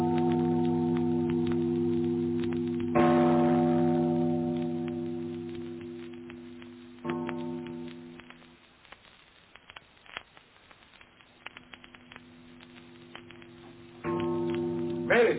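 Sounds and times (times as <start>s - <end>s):
large tower bell tolling with rich lingering overtones: 0.0s - 5.9s, 14.0s - 15.3s.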